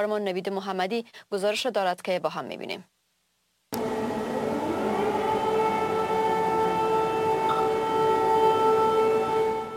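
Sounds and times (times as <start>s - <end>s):
speech: 0.0s - 3.0s
air-raid warning siren during emergency drill: 3.8s - 9.7s.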